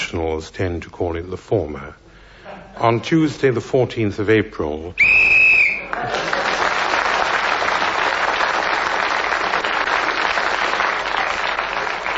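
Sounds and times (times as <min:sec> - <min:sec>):
speech: 0:00.1 - 0:02.0, 0:02.8 - 0:05.1, 0:06.0 - 0:06.4
whistle blast to end a round of a game: 0:05.0 - 0:06.0
crowd applause: 0:05.7 - 0:12.1.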